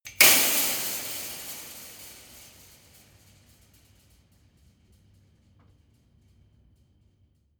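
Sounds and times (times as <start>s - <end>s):
long metal fence impact: 0.1s - 4.1s.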